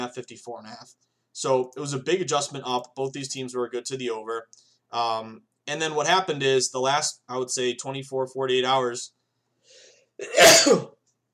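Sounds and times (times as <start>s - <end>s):
speech: 0.0s - 11.0s
sneeze: 10.2s - 11.0s.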